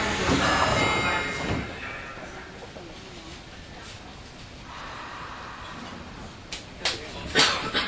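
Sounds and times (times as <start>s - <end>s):
subway train doors sliding shut with knocks and thuds: 0.0s - 1.8s
subway train rumble and hiss: 0.0s - 7.8s.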